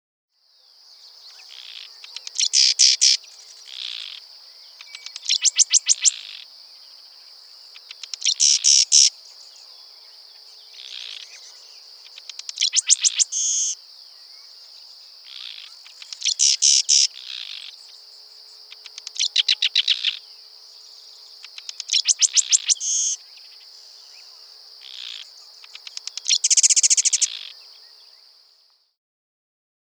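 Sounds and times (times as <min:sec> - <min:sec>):
Sedge Wren calling: 0:00.9 - 0:28.4.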